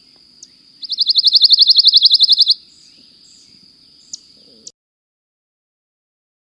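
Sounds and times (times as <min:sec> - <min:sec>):
pine warbler trilling song: 0:00.0 - 0:04.7.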